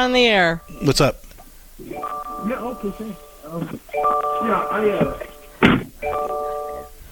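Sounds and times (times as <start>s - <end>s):
speech: 0.0s - 1.2s, 1.8s - 6.5s
voices: 1.8s - 6.9s
car door-ajar chime: 1.8s - 7.0s
car door thunk: 5.6s - 6.0s.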